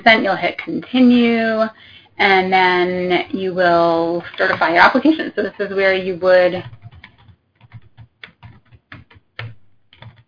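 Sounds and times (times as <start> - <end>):
speech: 0.0 - 6.8
computer keyboard typing with crisp plastic key clicks: 3.6 - 10.2.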